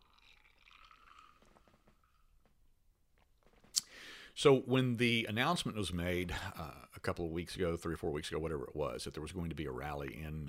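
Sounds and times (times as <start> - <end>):
person sipping a drink: 0.0 - 2.4
speech: 4.4 - 10.4.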